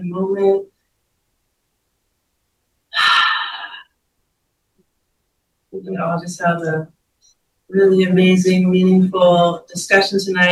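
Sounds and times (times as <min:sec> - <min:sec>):
speech: 0:00.0 - 0:00.7, 0:05.7 - 0:07.0, 0:07.7 - 0:10.4
deep breath inhalation: 0:02.9 - 0:03.8.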